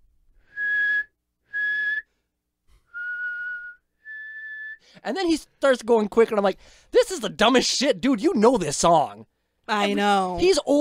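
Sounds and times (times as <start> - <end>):
person whistling an old tune: 0.4 - 2.2, 2.9 - 4.8
speech: 5.0 - 10.7.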